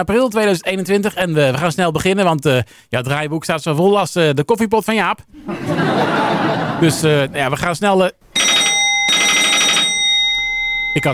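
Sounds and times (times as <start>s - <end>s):
speech: 0.0s - 8.2s, 10.9s - 11.1s
laughter: 5.4s - 7.4s
telephone ringing with classic bell-like trill: 8.4s - 11.1s.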